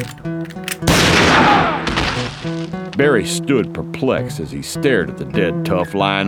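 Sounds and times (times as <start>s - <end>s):
rifle shot fired from a second-story window: 0.7s - 3.0s
speech: 3.0s - 6.2s.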